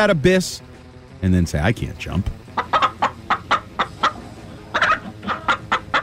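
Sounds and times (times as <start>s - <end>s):
speech: 0.0s - 2.7s
chicken clucking: 2.5s - 6.0s.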